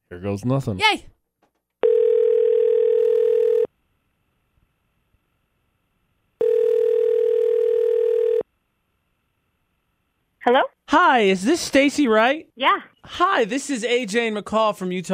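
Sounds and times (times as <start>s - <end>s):
speech: 0.1s - 1.2s, 10.5s - 15.1s
outgoing telephone ringing tone: 1.8s - 3.7s, 6.4s - 8.5s.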